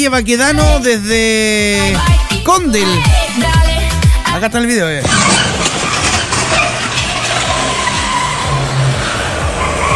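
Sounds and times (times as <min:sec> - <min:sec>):
speech: 0:00.0 - 0:03.6, 0:04.4 - 0:05.5
car engine rumble: 0:03.0 - 0:09.9
car tires skidding and squealing on a sloping street: 0:05.0 - 0:09.9.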